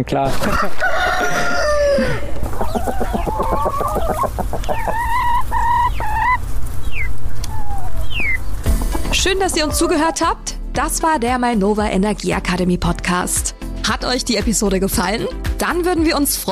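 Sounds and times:
speech: 0:00.0 - 0:04.9, 0:09.2 - 0:16.5
chicken clucking on a farm: 0:00.4 - 0:10.4.

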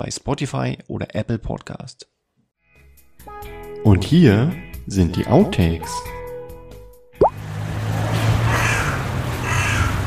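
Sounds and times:
speech: 0:00.0 - 0:02.1, 0:03.8 - 0:06.2
hooded crow cawing: 0:08.5 - 0:10.0.

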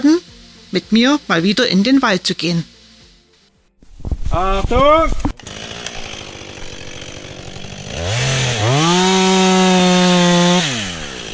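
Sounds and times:
speech: 0:00.0 - 0:02.7, 0:04.3 - 0:05.3
rough sawing noise: 0:03.8 - 0:11.3
chainsaw engine revving while felling trees in a forest: 0:04.5 - 0:11.3.

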